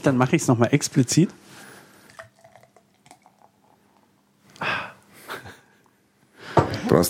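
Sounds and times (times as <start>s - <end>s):
speech: 0.0s - 1.4s
beer pouring and fizzing into a glass: 2.0s - 4.2s.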